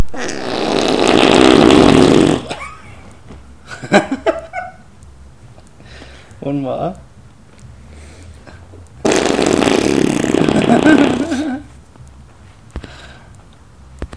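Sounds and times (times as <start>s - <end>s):
arm fart: 0.0s - 2.8s, 9.0s - 11.7s.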